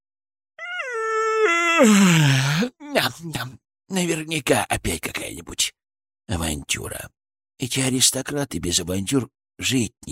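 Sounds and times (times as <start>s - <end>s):
loud drawn-out yawn: 0.6s - 2.8s
speech: 1.8s - 10.1s.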